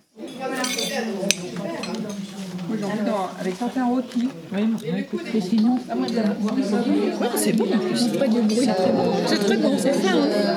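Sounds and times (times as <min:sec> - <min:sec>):
plates and cutlery clinking as diners take their plates: 0:00.2 - 0:03.7
diners in continuous conversation at a shared meal: 0:00.2 - 0:10.5
speech: 0:02.8 - 0:10.5.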